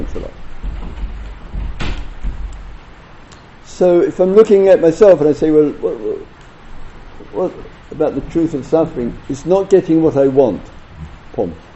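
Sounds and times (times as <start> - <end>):
door swinging shut with a solid thud: 0.0 - 2.9
steady low rumble of room noise: 0.0 - 11.7
speech: 3.8 - 6.3, 7.3 - 10.7, 11.4 - 11.7.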